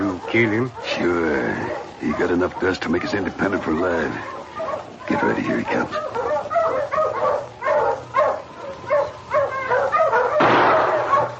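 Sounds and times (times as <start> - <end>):
sled dogs barking and whimpering: 0.0 - 11.3
speech: 0.3 - 6.2.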